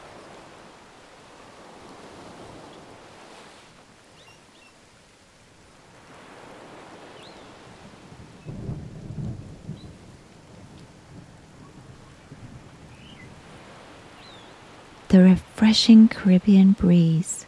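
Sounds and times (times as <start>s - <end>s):
gentle steady rain at a beach house: 0.0s - 17.4s
low rumble of thunder: 7.6s - 14.4s
speech: 15.1s - 17.4s.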